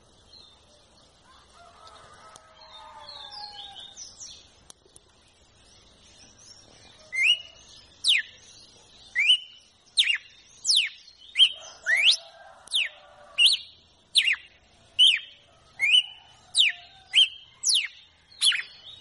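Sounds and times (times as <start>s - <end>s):
female red-cowled cardinal singing slurred whistles: 7.1s - 8.4s, 9.2s - 12.2s, 15.0s - 18.7s.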